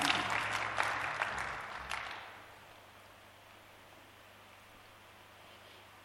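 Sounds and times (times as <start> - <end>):
audience clapping hands: 0.0 - 2.5.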